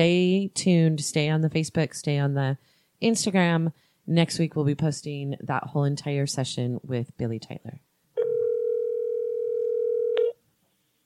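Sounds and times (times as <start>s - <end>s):
speech: 0.0s - 7.9s
telephone dial tone after a phone call cut out: 8.2s - 10.4s.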